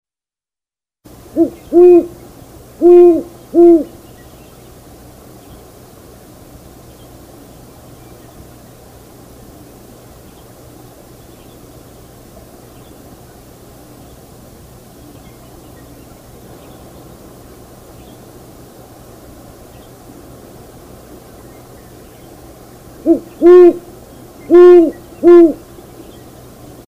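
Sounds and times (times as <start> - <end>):
great horned owl: 1.3 - 2.2, 2.8 - 4.0, 23.0 - 25.7.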